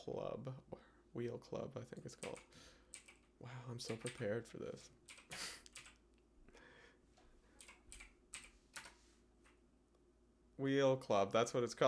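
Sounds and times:
speech: 0.0s - 2.8s, 3.4s - 5.5s, 10.6s - 11.8s
typing on a computer keyboard: 2.2s - 4.4s, 5.0s - 6.0s, 7.6s - 9.6s.

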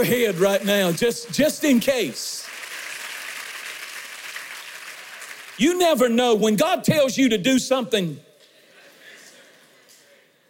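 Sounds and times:
speech: 0.0s - 2.5s, 5.6s - 8.3s
large crowd clapping: 0.0s - 6.2s.

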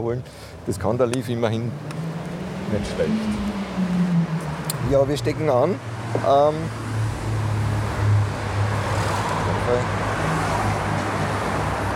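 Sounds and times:
speech: 0.0s - 2.0s, 2.7s - 4.0s, 4.9s - 6.8s, 9.7s - 10.0s
steady roar of passing street traffic: 0.0s - 11.9s.

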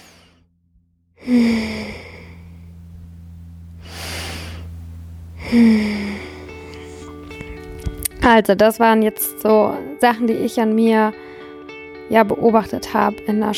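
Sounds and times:
deep breathing in and out: 0.0s - 0.5s, 1.2s - 7.8s, 11.2s - 11.7s
soft steady hum: 0.0s - 13.5s
speech: 1.2s - 1.8s, 8.3s - 11.2s, 12.1s - 13.5s.

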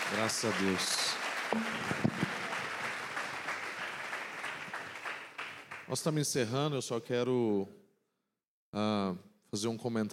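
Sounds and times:
crowd applauding: 0.0s - 5.9s
speech: 0.1s - 2.2s, 5.9s - 7.8s, 8.7s - 10.1s.

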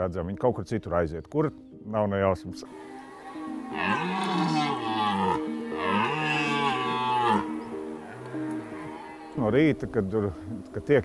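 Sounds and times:
speech: 0.0s - 4.2s, 9.4s - 11.0s
bulls bellowing: 3.6s - 9.4s.

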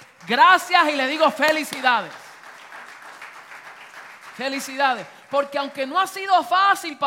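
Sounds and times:
crowd applauding: 0.0s - 6.3s
speech: 0.2s - 2.2s, 4.4s - 7.0s.

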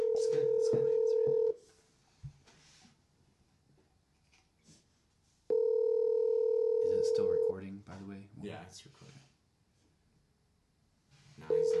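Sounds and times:
telephone call ringing with a steady electronic tone: 0.0s - 1.6s, 5.5s - 7.5s, 11.5s - 11.7s
faint noise: 0.0s - 11.7s
speech: 8.4s - 9.3s.

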